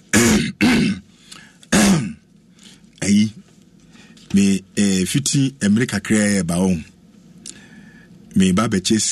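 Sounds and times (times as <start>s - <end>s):
person clearing throat in raspy bursts: 0.1s - 1.1s, 1.7s - 2.2s
speech: 4.4s - 7.0s, 8.4s - 9.0s.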